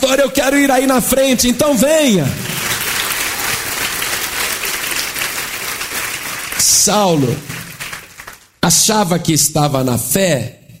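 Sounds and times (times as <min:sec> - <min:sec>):
speech: 0:00.1 - 0:02.5, 0:06.6 - 0:07.5, 0:08.6 - 0:10.6
church congregation applauding indoors: 0:02.2 - 0:08.6.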